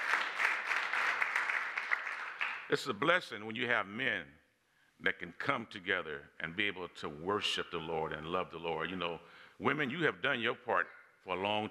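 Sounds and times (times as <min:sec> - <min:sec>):
crowd applauding: 0:00.0 - 0:02.8
speech: 0:02.7 - 0:04.4, 0:05.0 - 0:11.6.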